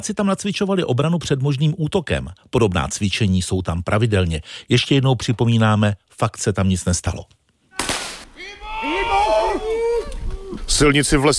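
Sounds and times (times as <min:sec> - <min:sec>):
speech: 0:00.0 - 0:07.4, 0:10.7 - 0:11.3
loud sharp explosion during military exercise at a nuclear power plant: 0:07.8 - 0:08.4
wavering drawn-out moaning cries of the wounded: 0:08.4 - 0:10.7.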